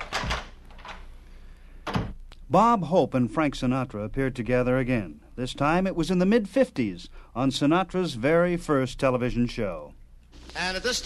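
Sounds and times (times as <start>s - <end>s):
side door slamming shut: 0.0s - 0.6s, 1.8s - 2.2s
side door creaking open with scraping: 0.0s - 1.1s
speech: 2.5s - 11.0s.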